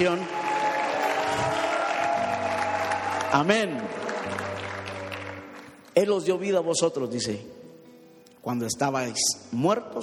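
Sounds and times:
speech: 0.0 - 0.4, 3.3 - 4.5, 6.0 - 7.6, 8.4 - 10.0
church congregation applauding: 0.0 - 6.0.

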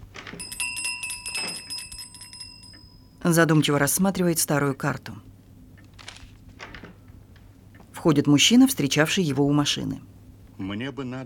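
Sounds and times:
small hand bell ringing: 0.4 - 3.2
speech: 3.3 - 5.3, 8.0 - 11.2.

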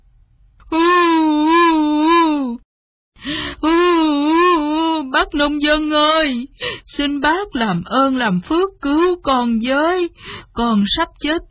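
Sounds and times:
human voice imitating a crocodile pretending to cry: 0.7 - 2.6, 3.6 - 5.1
speech: 5.3 - 11.4.

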